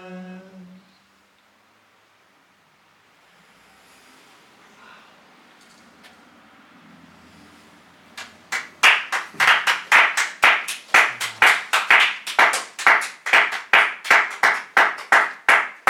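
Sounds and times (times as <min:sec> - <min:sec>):
hands clapping in a steady brisk rhythm: 0:08.2 - 0:15.8.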